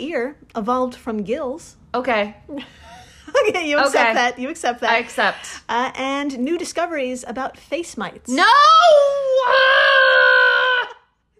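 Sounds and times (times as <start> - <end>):
speech: 0.0 - 10.4
person screaming: 8.5 - 11.1.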